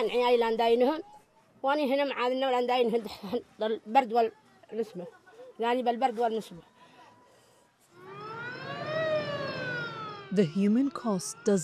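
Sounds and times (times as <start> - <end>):
speech: 0.0 - 6.7, 10.3 - 11.6
low rumble of traffic or engine noise: 7.9 - 11.6
ambulance siren wailing: 8.0 - 11.6.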